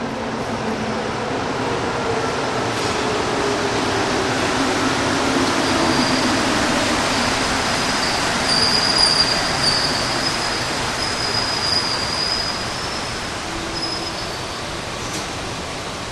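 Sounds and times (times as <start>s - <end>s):
metro train roaring through an underground tunnel: 0.0s - 16.1s.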